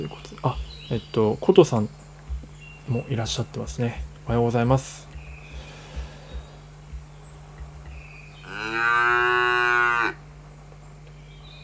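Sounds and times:
speech: 0:00.0 - 0:02.0, 0:02.9 - 0:05.1
steady low hum: 0:00.0 - 0:11.6
cow mooing on a farm: 0:08.4 - 0:10.2.

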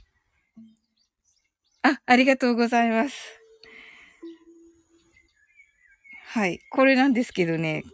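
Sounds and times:
quiet calm ambient meditation music with sustained soft tones: 0:00.0 - 0:01.8, 0:02.4 - 0:07.9
small birds chirping and twittering: 0:00.0 - 0:07.9
speech: 0:02.1 - 0:03.4, 0:06.3 - 0:07.9.

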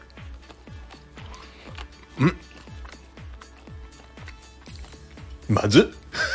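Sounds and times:
wet ASMR chewing of fast-food french fries: 0:00.0 - 0:06.3
speech: 0:02.2 - 0:02.5, 0:05.6 - 0:06.0.

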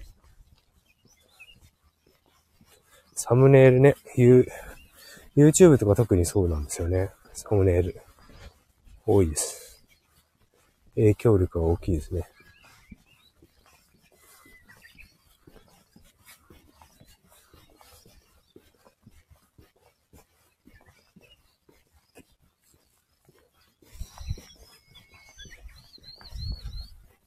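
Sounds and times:
soft rustling: 0:00.0 - 0:27.2
speech: 0:03.2 - 0:04.6, 0:05.4 - 0:08.1, 0:09.1 - 0:09.6, 0:11.0 - 0:12.3
Japanese bush warbler singing: 0:24.0 - 0:27.0.

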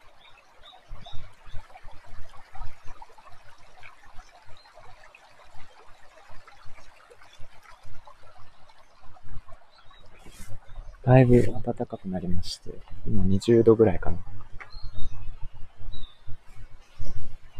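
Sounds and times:
spring water flowing where it wells up from a water source: 0:00.0 - 0:17.5
birds chirping: 0:09.7 - 0:17.5
speech: 0:11.1 - 0:14.3.

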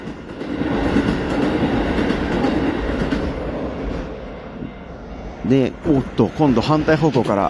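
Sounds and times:
train rumbling past over railway crossing: 0:00.0 - 0:07.4
speech: 0:05.5 - 0:07.4.

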